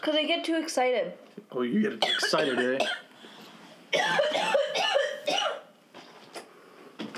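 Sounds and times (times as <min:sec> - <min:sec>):
speech: 0:00.0 - 0:03.1, 0:03.9 - 0:04.5
person coughing after smoking from a bong: 0:02.0 - 0:03.1, 0:03.9 - 0:05.7.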